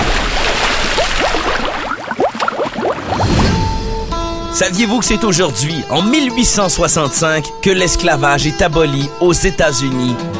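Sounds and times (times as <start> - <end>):
water gushing through a leak into a leaking boat: 0.0 - 3.3
speech: 4.6 - 10.3.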